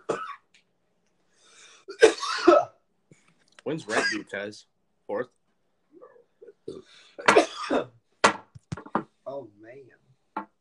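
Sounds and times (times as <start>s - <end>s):
person coughing: 0.0s - 0.4s, 1.9s - 2.8s, 3.9s - 4.3s, 6.4s - 8.0s
faint breathing: 1.3s - 1.9s, 6.8s - 7.2s
speech: 3.7s - 5.4s, 6.7s - 8.0s, 9.4s - 10.5s.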